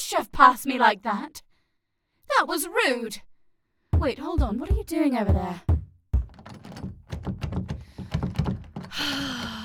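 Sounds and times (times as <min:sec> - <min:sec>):
speech: 0:00.2 - 0:01.4, 0:02.4 - 0:03.3, 0:04.0 - 0:05.7
door thunks: 0:04.0 - 0:09.1
door creaking squeal: 0:05.7 - 0:09.6.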